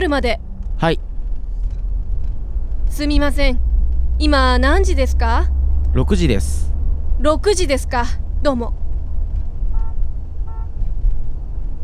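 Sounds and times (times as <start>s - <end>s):
speech: 0.0s - 1.1s, 2.9s - 8.8s
low rumble of idling traffic on a congested road: 0.0s - 11.8s
car horn honks in a traffic jam: 9.7s - 10.8s.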